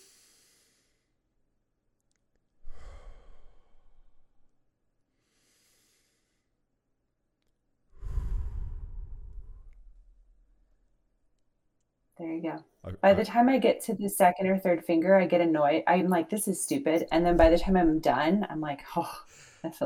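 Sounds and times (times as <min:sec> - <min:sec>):
slow deep breathing in and out: 0:00.0 - 0:01.2, 0:02.6 - 0:04.4, 0:05.1 - 0:06.6, 0:07.9 - 0:10.2, 0:19.2 - 0:19.7
speech: 0:12.2 - 0:19.8.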